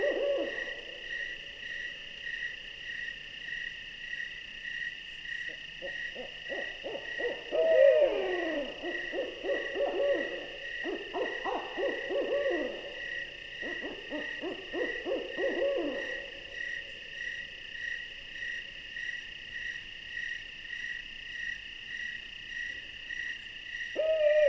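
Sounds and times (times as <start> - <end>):
owl calling: 0.0 - 1.0, 5.9 - 13.0, 13.6 - 16.4, 24.0 - 24.4
insects trilling rhythmically: 0.0 - 24.4.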